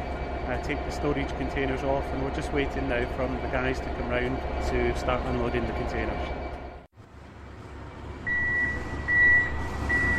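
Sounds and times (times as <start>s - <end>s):
forklift engine low rumble: 0.0s - 10.1s
speech: 0.5s - 6.4s
forklift reversing beeps: 8.2s - 10.1s.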